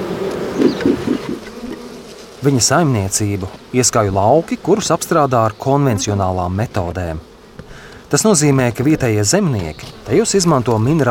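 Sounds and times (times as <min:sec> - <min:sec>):
many honeybees buzzing together inside a hive: 0:00.0 - 0:11.0
speech: 0:02.4 - 0:07.3, 0:08.1 - 0:11.0.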